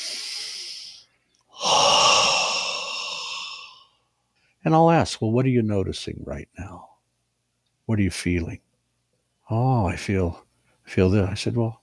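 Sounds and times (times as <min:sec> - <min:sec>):
deep belly breath: 0:00.0 - 0:04.0
speech: 0:04.6 - 0:06.9, 0:07.9 - 0:08.7, 0:09.5 - 0:11.8.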